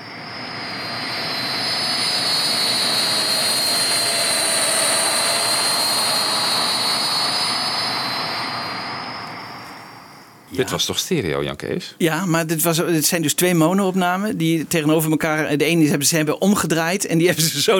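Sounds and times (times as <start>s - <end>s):
Viscount propeller-turbine airliner flying past right to left: 0.0s - 10.4s
speech: 10.6s - 17.7s.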